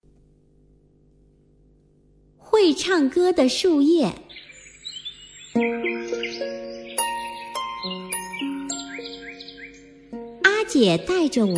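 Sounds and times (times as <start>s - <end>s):
speech: 2.4s - 4.2s, 5.6s - 5.9s, 10.7s - 11.5s
small birds chirping and twittering on tree branches: 3.8s - 11.5s
gentle melodic instrumental music: 5.6s - 10.6s.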